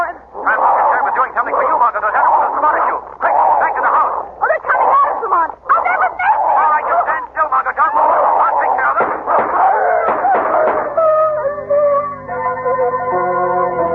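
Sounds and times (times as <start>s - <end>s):
sustained wailing tones: 0.0s - 13.8s
large dogs barking and snarling in an attack: 0.3s - 11.3s.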